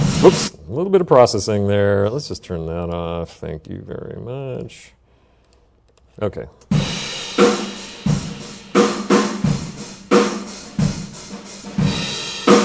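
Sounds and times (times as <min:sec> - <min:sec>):
drum kit playing a steady groove recorded with a room microphone: 0:00.0 - 0:00.6, 0:06.6 - 0:12.6
speech: 0:00.2 - 0:05.0, 0:06.2 - 0:06.8.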